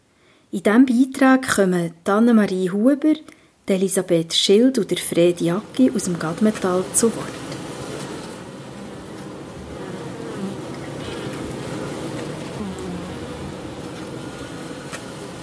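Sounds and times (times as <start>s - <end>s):
speech: 0.5s - 7.4s
many honeybees buzzing: 5.0s - 15.4s.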